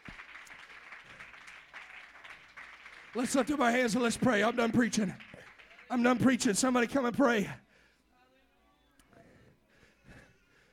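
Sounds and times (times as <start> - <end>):
congregation clapping hands during a church service: 0.0 - 7.1
speech: 3.1 - 5.3, 5.9 - 7.6.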